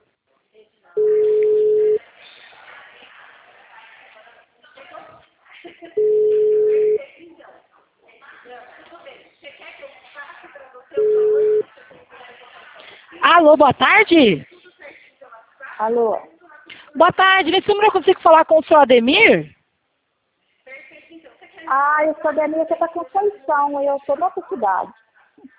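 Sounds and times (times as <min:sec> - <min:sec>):
voices: 0:00.0 - 0:19.6, 0:20.4 - 0:25.5
ringback tone on an outgoing telephone call: 0:01.0 - 0:02.0, 0:06.0 - 0:07.0, 0:11.0 - 0:11.6
speech: 0:13.4 - 0:14.5, 0:15.8 - 0:16.3, 0:17.0 - 0:19.6, 0:21.7 - 0:25.5.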